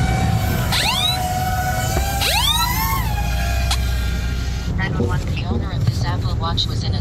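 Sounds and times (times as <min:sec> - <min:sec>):
Apple Watch crash-detection alarm rising electronic whoops: 0:00.0 - 0:04.0
rumbling noise: 0:00.0 - 0:06.9
people talking: 0:04.8 - 0:06.9.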